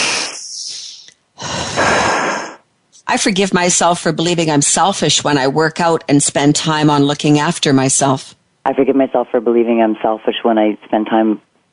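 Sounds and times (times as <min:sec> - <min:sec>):
deep breath: 0:00.0 - 0:02.6
speech: 0:03.1 - 0:11.5.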